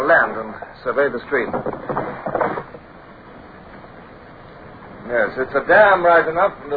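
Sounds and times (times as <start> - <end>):
speech: 0.2 - 2.3, 5.1 - 6.7
rowboat sculls shipped with wooden clatter: 1.3 - 2.9.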